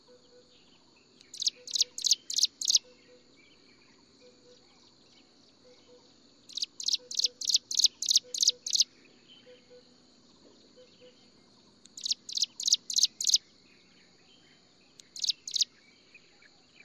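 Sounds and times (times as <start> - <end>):
steady insect hum: 0.0 - 16.8
striated prinia calls: 1.3 - 2.9, 6.5 - 8.8, 12.0 - 13.4, 15.2 - 15.6.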